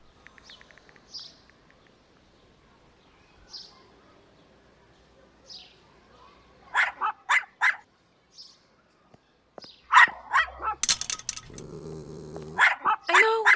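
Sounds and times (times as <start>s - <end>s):
leashed dog barking at a dog park gate: 6.8s - 7.8s, 9.9s - 13.5s
clattering: 10.8s - 11.9s
leashed dog growling at a dog park gate: 10.8s - 13.5s.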